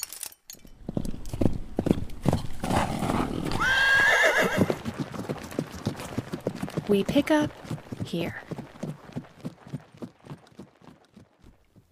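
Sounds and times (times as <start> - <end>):
galloping hooves clattering: 0.6 - 11.9
jet-black horse hitched to a chariot whinnying: 2.7 - 4.8
speech: 6.9 - 8.4.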